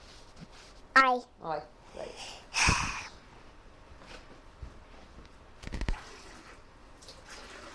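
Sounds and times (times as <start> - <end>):
speech: 1.0 - 2.9
water trickling and dripping into a sponge: 5.9 - 7.7.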